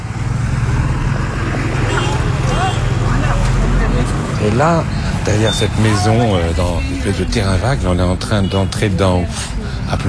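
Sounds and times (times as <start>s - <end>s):
traffic engine rumble in a traffic jam on a congested street in Delhi: 0.0s - 10.0s
car horns in Delhi traffic: 1.8s - 3.5s, 5.3s - 9.3s
speech: 4.5s - 10.0s.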